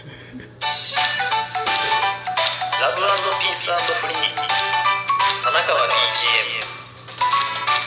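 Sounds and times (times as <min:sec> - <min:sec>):
short bright electronic podcast jingle with chiming melodic tones: 0:00.6 - 0:05.2
voice singing or speaking along over the music: 0:01.0 - 0:04.8, 0:05.4 - 0:06.8
speech: 0:02.8 - 0:04.6, 0:05.5 - 0:06.6.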